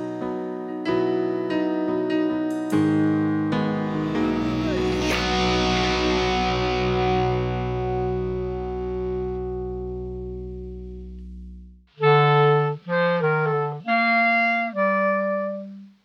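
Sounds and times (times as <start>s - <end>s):
synth chords played by studio house band: 0.0s - 15.7s
sustained distorted chord: 2.8s - 11.8s
deep bass drone: 2.8s - 11.9s.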